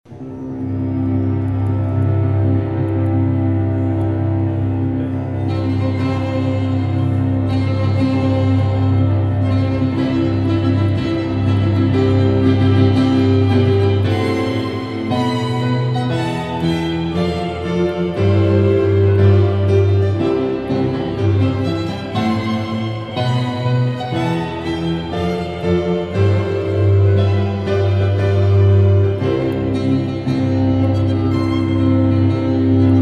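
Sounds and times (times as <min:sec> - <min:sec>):
processional march on piano and strings: 0:00.1 - 0:33.0.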